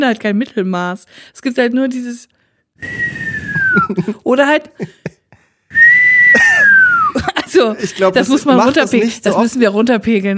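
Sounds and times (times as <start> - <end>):
speech: 0.0 - 5.2, 7.1 - 10.3
person whistling loudly: 2.8 - 4.0, 5.7 - 7.2
laughter: 3.5 - 5.5, 6.6 - 9.0.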